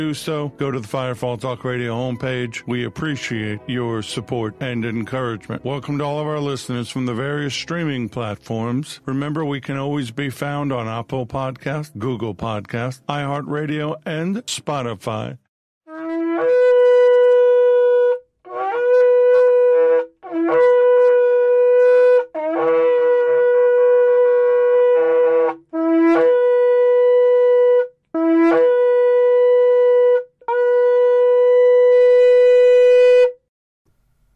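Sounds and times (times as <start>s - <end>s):
speech: 0.0s - 15.4s
shofar blasts: 15.9s - 33.4s.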